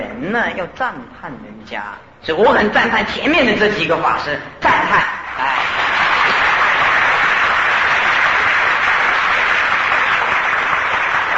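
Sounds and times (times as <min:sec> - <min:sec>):
speech: 0:00.2 - 0:05.8
audience applauding at a Buddhist monk's dharma talk: 0:05.3 - 0:11.3.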